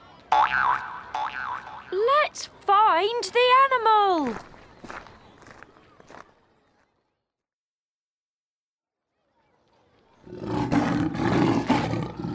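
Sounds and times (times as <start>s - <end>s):
speech: 0.4s - 5.1s
loud lion roaring: 10.2s - 12.3s.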